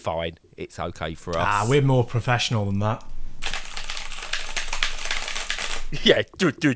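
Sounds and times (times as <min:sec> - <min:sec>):
speech: 0:00.0 - 0:03.1, 0:05.9 - 0:06.7
rapid keyboard typing: 0:01.0 - 0:06.4.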